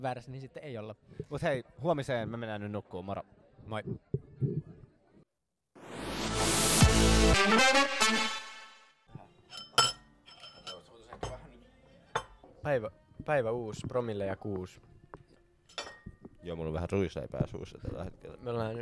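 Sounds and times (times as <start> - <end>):
speech: 0.0 - 4.6, 7.0 - 8.4, 12.6 - 14.9, 16.4 - 18.8
dishes clinking and rattling at hotel breakfast: 9.4 - 11.5, 15.7 - 16.3.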